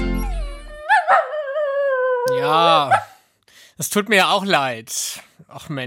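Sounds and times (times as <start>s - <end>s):
dog in a cage whimpering and howling: 0.1s - 3.1s
speech: 2.5s - 3.0s, 3.8s - 5.8s.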